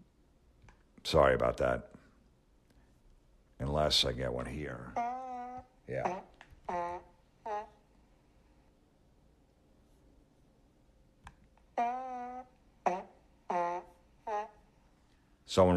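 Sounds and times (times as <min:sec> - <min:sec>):
speech: 0:01.1 - 0:02.0, 0:03.8 - 0:05.0, 0:05.9 - 0:06.8, 0:15.6 - 0:15.7
played-back recorded fart sounds: 0:04.9 - 0:07.8, 0:11.7 - 0:14.6.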